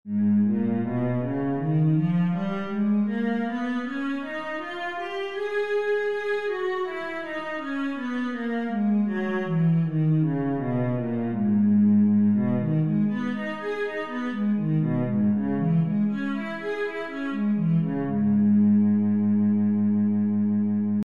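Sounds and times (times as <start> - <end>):
cello in G sharp minor: 0.1 - 21.0.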